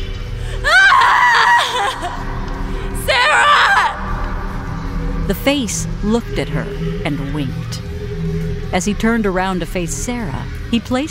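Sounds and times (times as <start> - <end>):
low steady hum: 0.0 - 11.0
woman screaming in terror: 0.6 - 2.4, 3.0 - 4.1
speech: 5.3 - 11.0.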